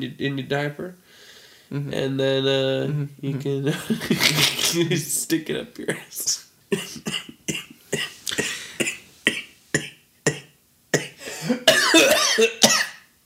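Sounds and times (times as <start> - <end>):
speech: 0.0 - 7.1
wheezy strained breathing: 1.0 - 1.8, 7.9 - 9.2, 11.1 - 11.7
person coughing: 6.7 - 13.1.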